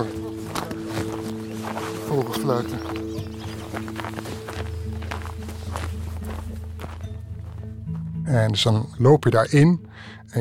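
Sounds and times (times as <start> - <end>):
footsteps crunching through snow at a walking pace: 0.0 - 8.2
speech: 2.1 - 3.0, 8.3 - 10.3.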